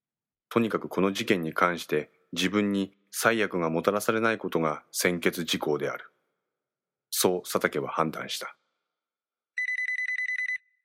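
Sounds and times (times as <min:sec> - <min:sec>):
speech: 0:00.5 - 0:06.1, 0:07.1 - 0:08.6
telephone ringing with electronic trill: 0:09.6 - 0:10.8.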